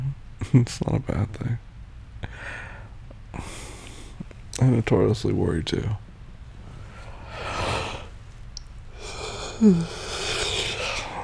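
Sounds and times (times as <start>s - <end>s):
speech: 0.5s - 1.7s, 4.6s - 6.0s, 9.6s - 10.0s
person yawning: 9.0s - 11.2s.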